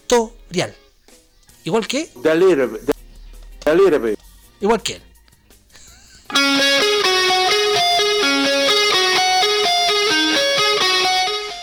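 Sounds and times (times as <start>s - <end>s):
speech: 0.1s - 0.8s, 1.6s - 2.9s, 3.7s - 5.1s
rock band playing a hard rock song: 6.3s - 11.6s.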